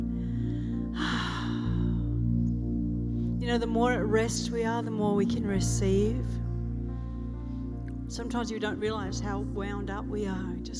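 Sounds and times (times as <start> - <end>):
deep breath during a guided relaxation: 0.0 - 2.4, 6.9 - 7.8
steady sustained musical drone: 0.0 - 10.7
speech: 3.5 - 6.5, 8.1 - 10.7.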